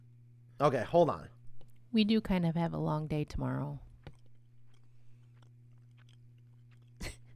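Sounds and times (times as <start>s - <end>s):
speech: 0.6s - 3.9s
chewing food: 3.8s - 7.3s.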